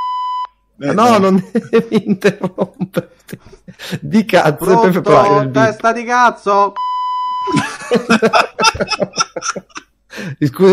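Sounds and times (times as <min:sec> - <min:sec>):
electronic beep tone: 0:00.0 - 0:00.5, 0:05.0 - 0:05.7, 0:06.8 - 0:07.6
laughter: 0:00.8 - 0:05.4, 0:07.5 - 0:10.3
speech: 0:00.8 - 0:10.7
person snickering with laughter: 0:01.0 - 0:04.1, 0:07.5 - 0:10.4.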